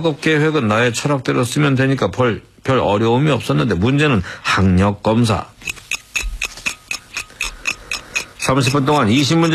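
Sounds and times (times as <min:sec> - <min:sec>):
speech: 0:00.0 - 0:05.5, 0:08.5 - 0:09.5
clock second hand ticking: 0:05.6 - 0:09.5.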